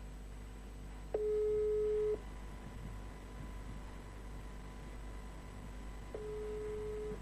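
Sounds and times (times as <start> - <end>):
WhatsApp call busy tone beeps: 1.2 - 2.2, 6.2 - 7.2.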